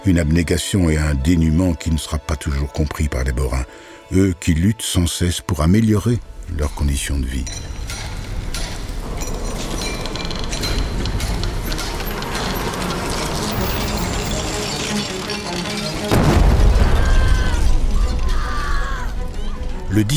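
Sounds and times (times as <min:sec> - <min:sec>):
speech: 0:00.0 - 0:08.0, 0:20.0 - 0:20.1
debris-like crackling: 0:06.0 - 0:20.1
steady clattering mechanical din: 0:07.4 - 0:20.1
deep heavy boom of a coal mine explosion: 0:16.1 - 0:18.4.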